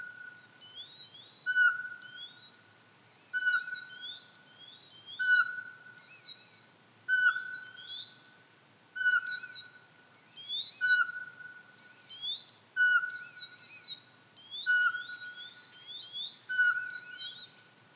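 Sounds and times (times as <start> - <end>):
songbirds chattering and warbling: 0.0 - 17.9
Eurasian pygmy owl Glaucidium passerinum giving whistled hoots: 3.3 - 4.2, 5.0 - 6.4, 7.1 - 8.3, 9.0 - 9.8, 10.4 - 17.5.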